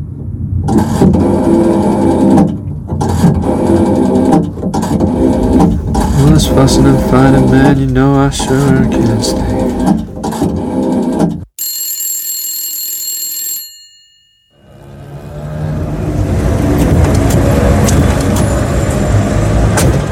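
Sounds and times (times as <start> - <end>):
loud continuous rumble of road traffic: 0.0 - 10.9, 14.6 - 20.1
speech: 6.6 - 10.0
telephone ringing with bright steady bell tone: 11.6 - 14.9.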